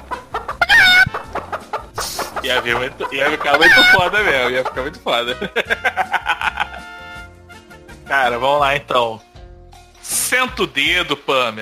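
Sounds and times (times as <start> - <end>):
chicken clucking: 0.0 - 5.3
laughter: 2.0 - 7.0
speech: 2.5 - 6.6, 8.1 - 9.3, 10.1 - 11.6.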